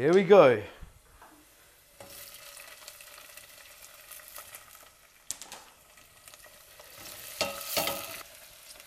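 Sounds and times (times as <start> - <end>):
speech: 0.0 - 0.8
bell pepper and onions sizzling in a hot pan: 1.2 - 8.8
utensil scraping a pan while stirring: 6.8 - 8.2
utensil clattering against the pan: 7.0 - 8.2.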